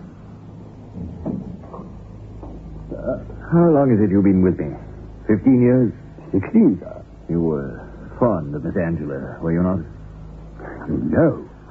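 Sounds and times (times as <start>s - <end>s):
door pushed shut with a muffled thud and wooden rattle: 0.9s - 2.7s
speech: 3.0s - 10.0s, 10.9s - 11.4s.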